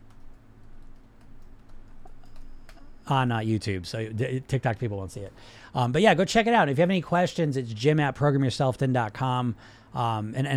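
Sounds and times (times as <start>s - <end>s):
faint typing on a computer keyboard: 0.0s - 2.9s
speech: 3.1s - 10.5s.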